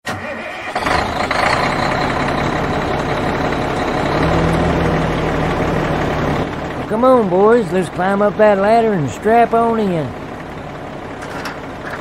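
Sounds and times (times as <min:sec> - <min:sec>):
motorhome on monster-truck wheels engine starting by remote auto start: 0:00.0 - 0:11.9
speech: 0:07.0 - 0:10.2.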